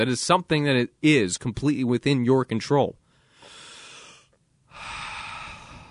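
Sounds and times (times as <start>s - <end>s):
speech: 0.0s - 3.0s
deep breath in and out: 3.0s - 5.8s.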